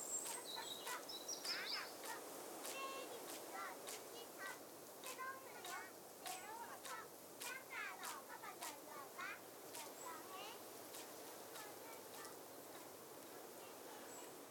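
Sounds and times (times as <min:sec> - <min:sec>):
children's folk song background music in an orphanage: 0:00.2 - 0:14.4.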